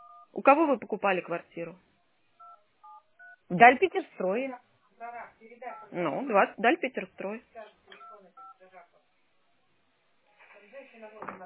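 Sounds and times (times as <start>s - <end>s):
telephone keypad dialing tones: 0.0s - 0.3s, 2.4s - 3.4s, 8.0s - 8.6s
speech: 0.4s - 1.9s, 3.5s - 7.8s.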